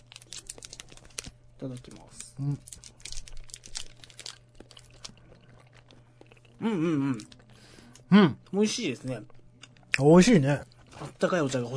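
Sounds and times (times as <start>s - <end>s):
plastic wrapping of a yokan sweet crinkling and tearing: 0.0s - 5.2s
low quiet hum: 0.0s - 11.7s
speech: 1.6s - 3.0s, 6.6s - 7.3s, 8.1s - 9.4s, 10.0s - 11.7s.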